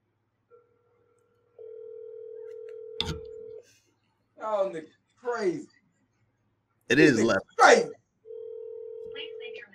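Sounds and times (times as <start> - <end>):
phone line ringing with steady electronic tone: 1.6 - 3.6, 8.3 - 9.6
speech: 4.4 - 5.8, 6.9 - 8.0.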